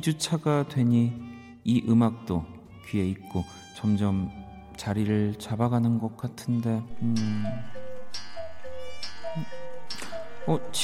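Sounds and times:
speech: 0:00.0 - 0:07.8, 0:10.4 - 0:10.8
cuckoo clock mechanical clacks: 0:06.9 - 0:10.8.

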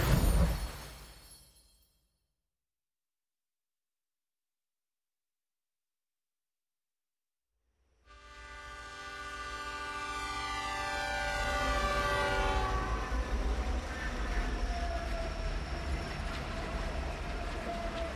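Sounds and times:
train horn blaring: 0:08.0 - 0:13.8
train wheels rumbling on rails: 0:11.2 - 0:18.1.

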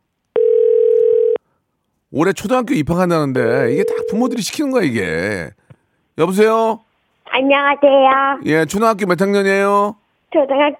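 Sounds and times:
telephone dial tone as a phone call connects: 0:00.3 - 0:01.4
speech: 0:02.2 - 0:05.6, 0:06.2 - 0:10.7.

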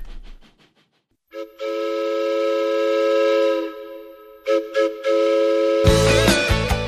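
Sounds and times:
loud sustained train whistle blowing: 0:01.3 - 0:06.7.

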